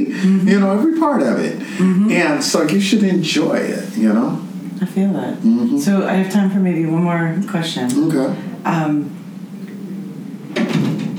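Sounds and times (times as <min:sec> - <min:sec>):
speech: 0:00.2 - 0:09.2
door closing with a rattling thud: 0:10.5 - 0:11.1.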